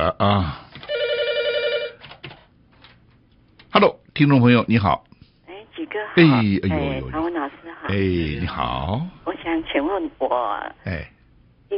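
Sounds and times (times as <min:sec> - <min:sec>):
speech: 0:00.0 - 0:00.6, 0:03.8 - 0:05.1, 0:05.8 - 0:11.7
telephone ring on a call-in line: 0:00.9 - 0:02.0.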